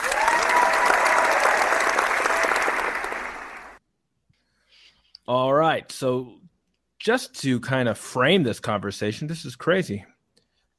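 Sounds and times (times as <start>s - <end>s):
large crowd clapping and cheering: 0.0s - 3.8s
speech: 5.3s - 6.4s, 7.0s - 10.1s.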